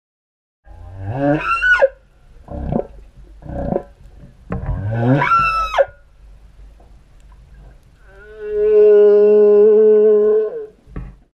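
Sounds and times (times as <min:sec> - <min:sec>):
whale calls: 0:00.7 - 0:04.0, 0:04.6 - 0:06.1, 0:08.0 - 0:10.8.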